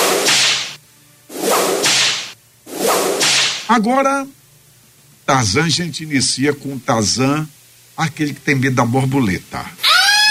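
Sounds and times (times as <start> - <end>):
whip lashes with a crisp snap: 0.0 - 3.7
speech: 3.7 - 4.4, 5.3 - 9.9.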